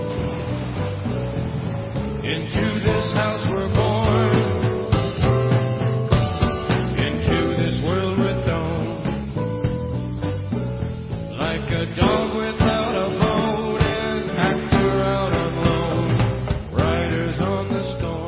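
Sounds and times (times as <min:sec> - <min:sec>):
moody rock song with bass, drums and keyboard: 0:00.0 - 0:17.0
hissing wash like rainfall: 0:00.0 - 0:18.2
male voice singing a moody rock song: 0:02.2 - 0:05.0, 0:06.8 - 0:09.4, 0:11.3 - 0:18.2
speech: 0:02.3 - 0:03.3.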